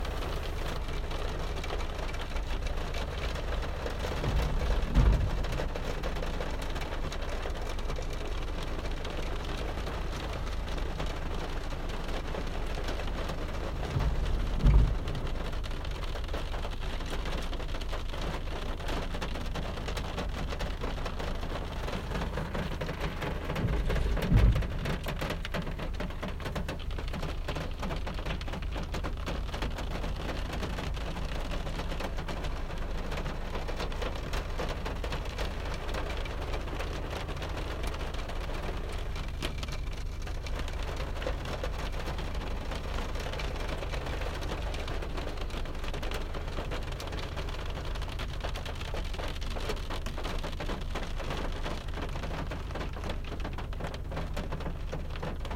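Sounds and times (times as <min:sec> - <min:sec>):
rain hitting the car windshield: 0:00.0 - 0:55.5.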